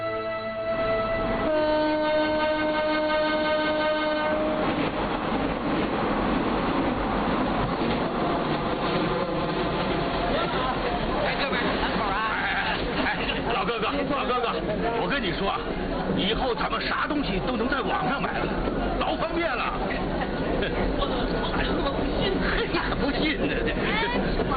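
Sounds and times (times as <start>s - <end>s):
passenger train horn: 0.0s - 4.8s
passenger train carriages rumbling and rattling over rails: 0.0s - 24.5s
speech: 15.2s - 24.5s.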